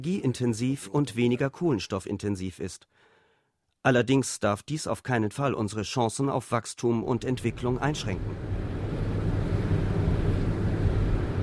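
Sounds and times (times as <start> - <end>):
speech: 0.0 - 3.1, 3.8 - 8.6
large wind turbines whirring on a high plateau near Pune in western India: 7.1 - 11.4.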